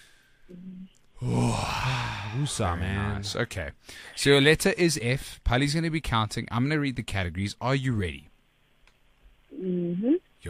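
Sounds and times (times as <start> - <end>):
person drawing a deep breath: 1.2 - 2.5
speech: 2.3 - 8.3, 9.5 - 10.4.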